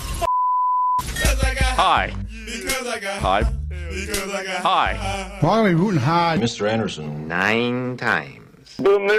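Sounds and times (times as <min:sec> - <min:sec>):
loud steady censor beep tone: 0:00.3 - 0:01.0
speech: 0:01.8 - 0:09.1.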